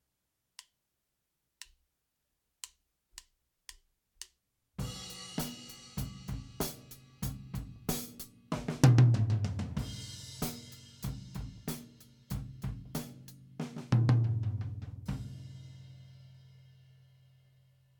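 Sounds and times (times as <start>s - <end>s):
right tom drum without effect: 4.8s - 15.6s.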